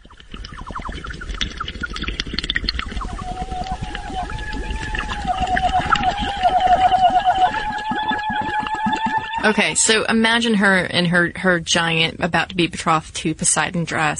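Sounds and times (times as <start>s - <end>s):
splashing and bubbling water: 0.0s - 10.4s
warbling underwater mouth-to-water singing: 0.0s - 10.5s
buzzy bumblebee-like wavering tones: 2.8s - 10.2s
speech: 9.5s - 14.1s.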